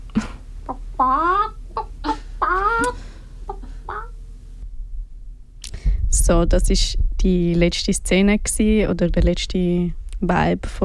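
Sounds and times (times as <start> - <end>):
low steady hum: 0.0 - 10.8
chickens clucking: 0.7 - 4.2
speech: 6.3 - 10.8.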